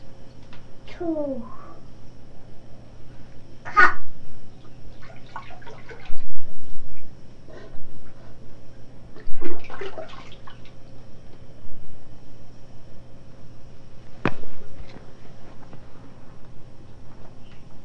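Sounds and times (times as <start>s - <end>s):
steady low hum: 0.0s - 17.8s
speech: 1.0s - 1.6s
water splashing in a potty: 4.9s - 6.4s, 9.2s - 10.8s.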